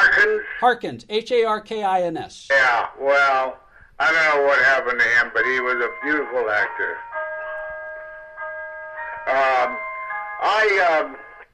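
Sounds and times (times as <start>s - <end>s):
speech: 0.3s - 7.1s, 9.3s - 9.8s, 10.4s - 11.2s
clock chiming: 4.6s - 11.4s.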